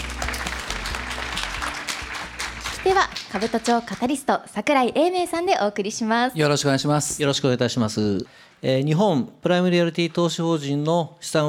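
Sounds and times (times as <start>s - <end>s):
audience applause at a corporate investor briefing: 0.0s - 4.2s
speech: 2.8s - 11.4s.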